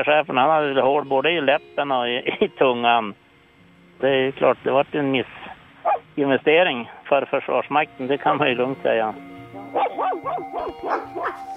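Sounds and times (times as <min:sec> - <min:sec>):
speech: 0:00.0 - 0:03.2, 0:04.0 - 0:11.5
dogs barking and yelping in a kennel: 0:05.8 - 0:06.1, 0:09.6 - 0:11.5.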